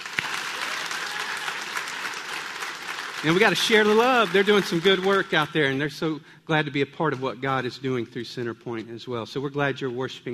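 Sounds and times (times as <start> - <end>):
audience applauding: 0.0 - 5.9
speech: 3.2 - 10.3.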